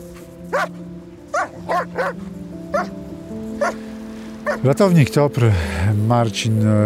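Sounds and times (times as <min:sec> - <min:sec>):
grey Old German Shepherd avalanche rescue dog barking at mountain rescue headquarters: 0:00.5 - 0:00.7, 0:01.3 - 0:02.9, 0:03.6 - 0:03.8, 0:04.4 - 0:04.6
speech: 0:00.5 - 0:03.0, 0:04.5 - 0:06.8.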